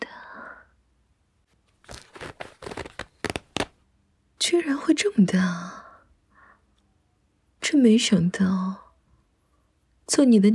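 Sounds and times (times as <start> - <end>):
zipper being pulled down: 1.8 - 3.8
speech: 4.6 - 5.8, 7.8 - 8.8, 10.1 - 10.5.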